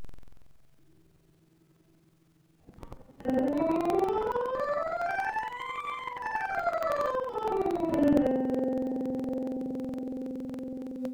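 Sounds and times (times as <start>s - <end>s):
C scale: 3.3s - 11.1s.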